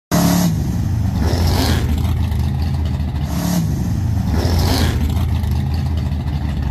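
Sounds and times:
American Oldsmobile car: 0:00.1 - 0:06.6.

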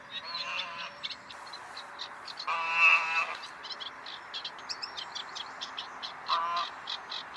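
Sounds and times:
swan goose: 0:00.1 - 0:00.9, 0:01.6 - 0:03.5, 0:06.3 - 0:07.3.

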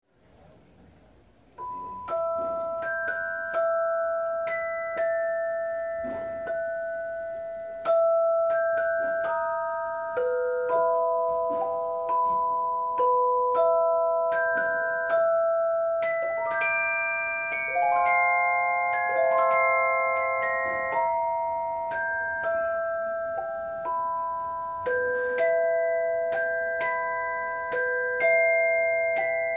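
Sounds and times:
celesta: 0:01.5 - 0:29.5.

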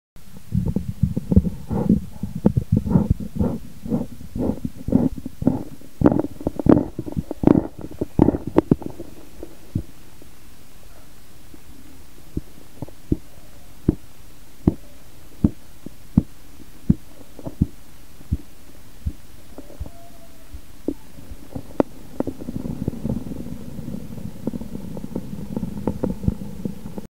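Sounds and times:
manual blood pressure monitor: 0:00.5 - 0:09.9, 0:14.6 - 0:27.0.

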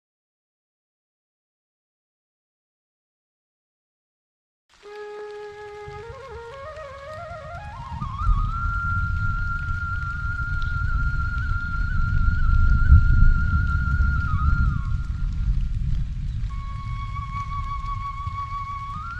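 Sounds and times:
rain: 0:04.7 - 0:19.1
flute playing: 0:04.8 - 0:15.8, 0:16.5 - 0:19.1.

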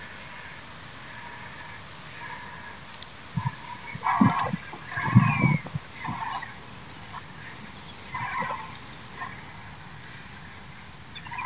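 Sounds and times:
Cape vulture rasping cackles: 0:03.4 - 0:06.6, 0:08.1 - 0:09.4.

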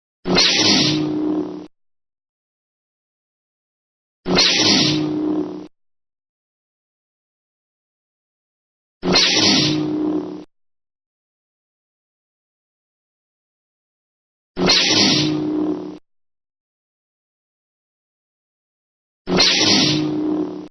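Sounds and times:
lightsaber hum: 0:00.3 - 0:01.7, 0:04.3 - 0:05.7, 0:09.1 - 0:10.5, 0:14.6 - 0:16.0, 0:19.3 - 0:20.7.

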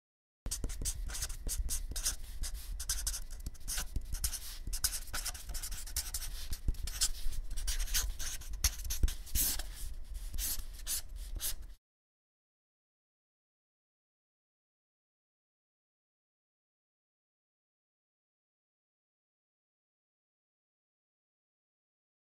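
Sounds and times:
marker writing on paper: 0:00.5 - 0:11.8.

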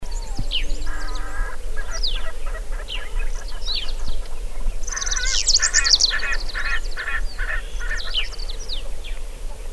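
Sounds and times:
Erckel's spurfowl calling: 0:00.0 - 0:09.7.

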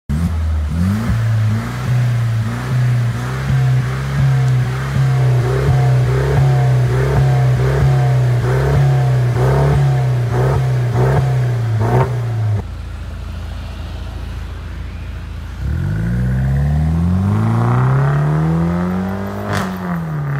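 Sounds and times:
Benz C200: 0:00.1 - 0:20.3.

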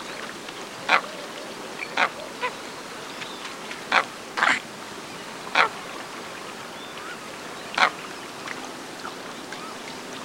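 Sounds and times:
Andean coot sharp broadband calls: 0:00.9 - 0:02.6, 0:03.9 - 0:04.6, 0:05.5 - 0:05.7, 0:07.7 - 0:08.0.

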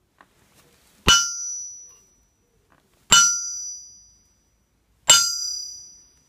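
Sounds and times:
copper hammer: 0:01.1 - 0:02.1, 0:03.1 - 0:04.1, 0:05.1 - 0:06.2.

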